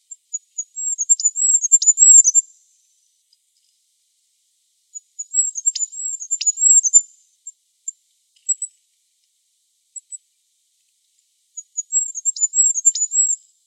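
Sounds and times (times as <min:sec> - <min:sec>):
goldcrest calling: 0:00.0 - 0:03.2, 0:04.9 - 0:08.8, 0:11.5 - 0:13.6.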